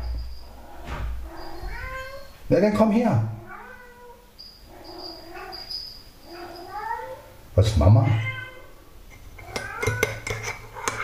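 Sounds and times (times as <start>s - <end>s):
cat meowing: 0.6s - 2.4s, 3.4s - 7.4s, 8.0s - 8.8s, 9.4s - 10.2s
speech: 2.5s - 3.4s, 7.6s - 8.3s.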